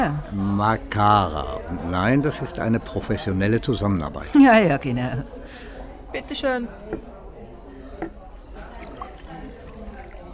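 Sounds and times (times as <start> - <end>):
speech: 0.0 - 7.1
low murmur of voices: 0.0 - 10.3
wheat beer pouring into a glass: 8.5 - 10.3
glass clink: 8.8 - 10.3.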